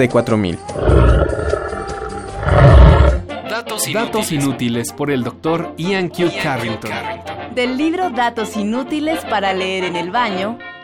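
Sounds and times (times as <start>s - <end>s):
speech: 0.0s - 1.5s, 3.6s - 10.7s
tiger roaring: 0.7s - 3.3s.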